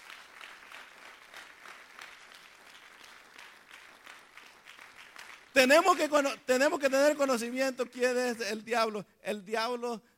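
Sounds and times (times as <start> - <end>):
congregation clapping: 0.0 - 7.5
speech: 5.6 - 10.1.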